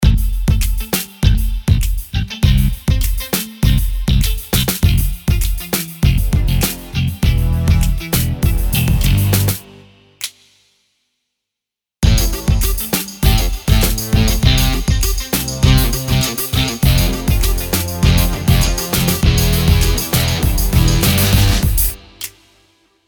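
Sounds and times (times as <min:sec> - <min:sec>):
pop rock music: 0:00.0 - 0:09.8, 0:12.0 - 0:22.2.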